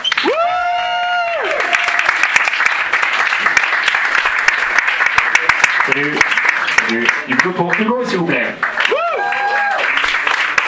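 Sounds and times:
person whooping cheer: 0.0s - 2.1s, 8.9s - 10.0s
audience applause welcoming a comedian to the stage: 0.0s - 10.6s
speech: 6.9s - 8.7s.

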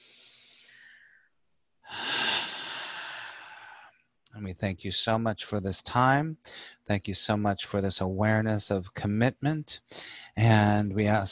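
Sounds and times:
person taking a big deep breath during a guided prayer: 0.0s - 4.0s, 6.4s - 6.8s, 9.9s - 10.4s
speech: 4.4s - 11.2s.

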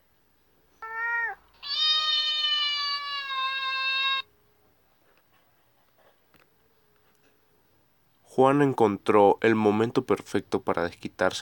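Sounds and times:
cat meowing: 0.8s - 4.3s
speech: 8.4s - 11.4s.

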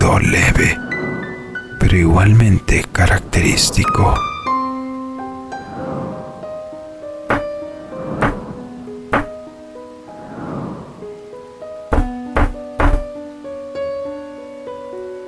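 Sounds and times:
soft rushing swells like rain: 0.0s - 15.2s
speech: 0.2s - 0.9s, 1.9s - 4.3s
knocking on a door: 7.3s - 7.5s, 8.2s - 8.4s, 9.1s - 9.4s, 11.9s - 13.1s.

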